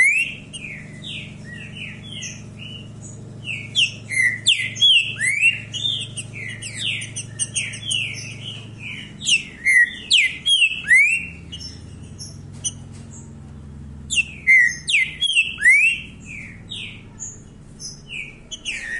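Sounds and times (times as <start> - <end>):
green-winged saltator song of slurred whistled notes and sharp chips: 0.0 - 0.4, 3.5 - 7.9, 9.3 - 11.4, 14.1 - 16.6
low steady hum: 0.0 - 18.9.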